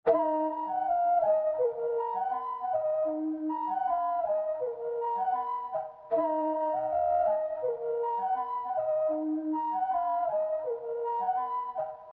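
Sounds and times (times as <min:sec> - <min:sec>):
flute melody loop in D minor: 0:00.0 - 0:12.1.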